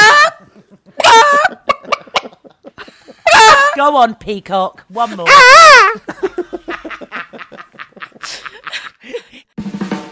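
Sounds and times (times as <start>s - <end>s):
laughter: 0.2s - 3.8s, 5.9s - 9.5s
person imitating a chicken clucking: 3.3s - 3.9s, 5.1s - 6.0s
speech: 3.8s - 6.2s.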